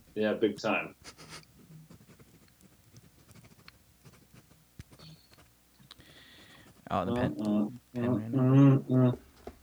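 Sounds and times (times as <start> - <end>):
speech: 0.2 - 1.2, 6.9 - 9.2
Air Canada pen scratching across paper: 1.1 - 4.6.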